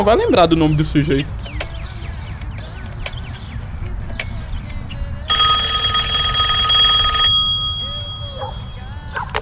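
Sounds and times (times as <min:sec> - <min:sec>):
speech: 0:00.0 - 0:01.6
telephone ringing with a bright electronic trill during a call: 0:05.3 - 0:09.0.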